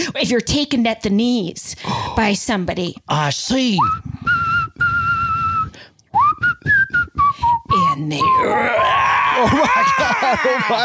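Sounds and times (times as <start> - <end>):
speech: 0.0 - 4.1, 8.0 - 10.8
person whistling a short song melody: 3.8 - 8.5
laughter: 9.3 - 10.8.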